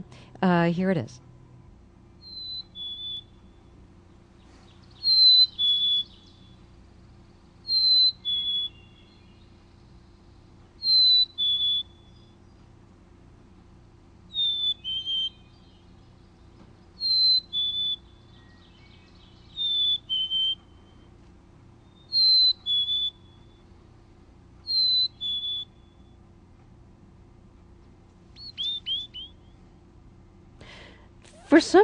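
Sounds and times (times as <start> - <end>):
faint low hum: 0.0 - 31.8
speech: 0.4 - 1.2, 31.6 - 31.8
black-capped chickadee singing two-note whistled song: 2.2 - 3.7, 4.6 - 6.6, 7.6 - 10.0, 10.7 - 12.6, 14.3 - 21.1, 21.8 - 23.8, 24.6 - 26.2, 28.4 - 29.6.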